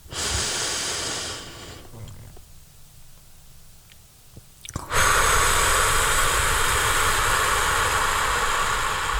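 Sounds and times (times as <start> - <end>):
slow deep breathing in a guided breathing exercise: 0.0 - 2.4, 4.8 - 9.1.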